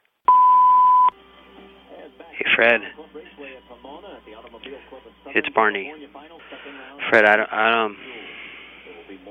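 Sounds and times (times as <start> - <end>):
answering machine beep: 0.3 - 1.1
speech: 2.6 - 8.1.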